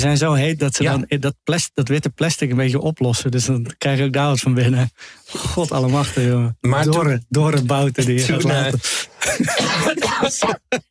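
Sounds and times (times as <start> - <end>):
speech: 0.0 - 10.8
person coughing harshly: 8.2 - 10.8.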